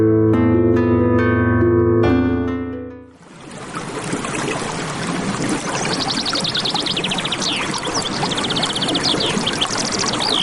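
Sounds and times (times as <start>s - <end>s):
musical passage: 0.0s - 3.2s
river water rushing in the state of Oaxaca: 3.2s - 10.4s
birds chirping: 5.3s - 10.4s.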